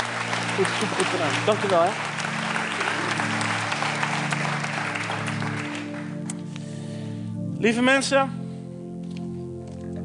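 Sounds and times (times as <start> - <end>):
crowd applauding: 0.0 - 6.5
speech: 0.6 - 2.1, 7.6 - 8.4.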